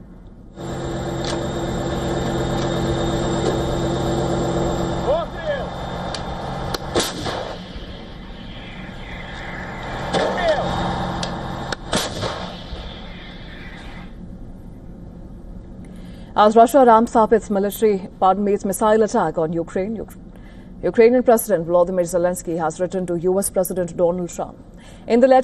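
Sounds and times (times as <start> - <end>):
low engine rumble: 0.0 - 13.0
self-propelled howitzer firing on dugouts in the Donetsk region: 11.8 - 12.8
speech: 16.4 - 20.2, 20.8 - 25.4.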